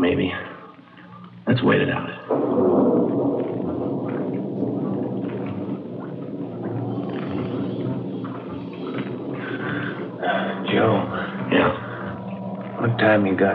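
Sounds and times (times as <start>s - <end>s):
rain falling: 0.0s - 13.5s
speech: 0.2s - 0.5s, 1.5s - 3.5s, 12.9s - 13.5s.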